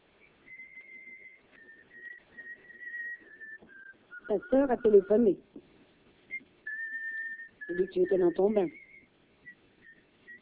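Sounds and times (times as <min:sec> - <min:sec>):
faint rustling: 0:00.0 - 0:04.3, 0:05.4 - 0:10.3
person whistling a casual wandering tune while undressing: 0:00.5 - 0:05.1, 0:06.3 - 0:09.1
speech: 0:04.3 - 0:05.6, 0:07.9 - 0:08.8.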